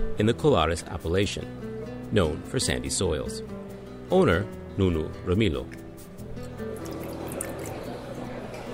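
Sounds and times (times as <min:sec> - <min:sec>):
speech: 0:00.2 - 0:05.8
wine pouring into a glass: 0:06.4 - 0:08.7.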